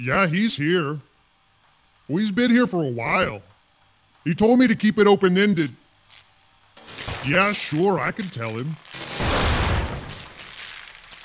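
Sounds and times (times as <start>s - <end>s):
speech: 0.0s - 1.1s, 2.1s - 3.5s, 4.2s - 5.8s, 7.2s - 8.8s
explosion: 9.0s - 11.2s.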